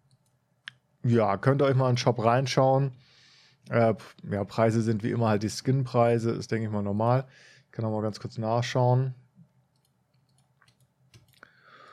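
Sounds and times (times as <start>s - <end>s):
speech: 1.0s - 9.2s
soft computer mouse clicks: 9.4s - 11.4s.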